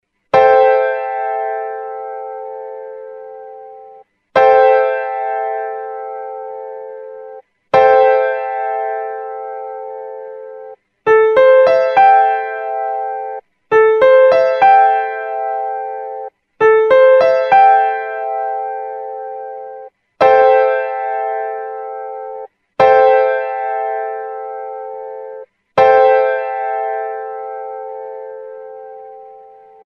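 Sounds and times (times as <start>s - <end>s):
A minor seventh piano chord: 0.3s - 29.9s.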